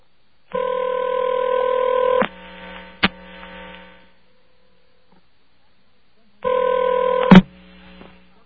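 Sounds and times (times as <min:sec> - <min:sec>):
telephone ringback tones of a collect call: 0:00.5 - 0:02.2, 0:06.4 - 0:07.4
telephone line click: 0:06.5 - 0:07.4.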